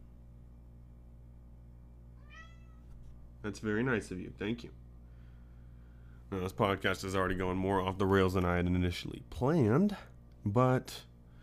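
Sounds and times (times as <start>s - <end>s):
steady low hum: 0.0s - 11.4s
cat meowing: 2.2s - 2.9s
speech: 3.4s - 4.8s, 6.3s - 11.1s.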